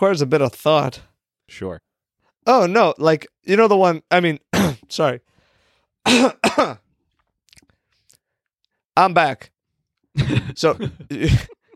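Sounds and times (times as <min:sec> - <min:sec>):
speech: 0:00.0 - 0:05.3, 0:06.0 - 0:06.8, 0:09.0 - 0:09.5, 0:10.2 - 0:11.6
person coughing: 0:04.6 - 0:04.9, 0:06.0 - 0:06.9, 0:10.2 - 0:11.7.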